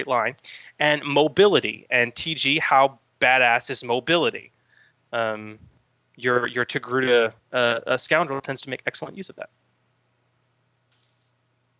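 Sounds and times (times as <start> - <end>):
speech: 0.0 - 9.6
low hum: 0.0 - 11.7
cricket chirping: 10.9 - 11.5.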